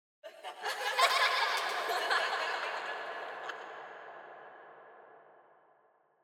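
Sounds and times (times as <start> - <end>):
children laughing with eerie reverb: 0.2 - 5.0.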